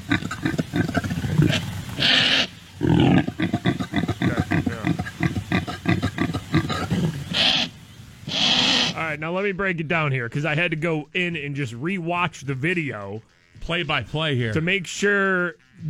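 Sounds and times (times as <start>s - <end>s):
impala mating calls of grunts and rasping roars: 0.0s - 9.2s
speech: 9.2s - 15.8s.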